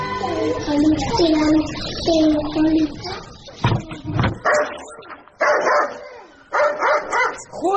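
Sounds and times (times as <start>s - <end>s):
people talking: 0.1s - 5.3s, 7.3s - 7.7s
dog barking: 4.4s - 7.5s.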